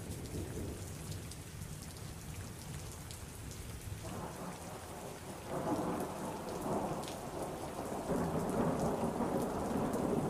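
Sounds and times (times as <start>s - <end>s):
steady rain pattering: 0.0s - 10.2s
rolling thunder: 5.5s - 10.2s.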